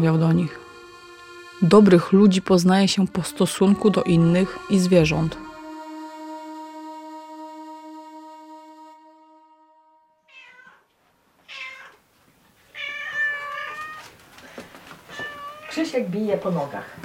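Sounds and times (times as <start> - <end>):
speech: 0.0 - 0.6, 1.6 - 5.5, 16.0 - 17.0
long steady horn-like tone: 0.0 - 10.4
several cats meowing in drawn-out strained calls: 10.3 - 12.0, 12.7 - 14.2, 15.0 - 16.0.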